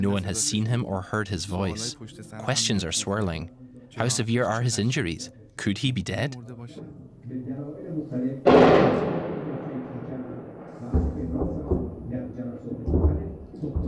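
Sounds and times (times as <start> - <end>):
speech: 0.0 - 9.0
airstrike explosion: 8.5 - 11.4
low rumbling booms: 8.5 - 13.8.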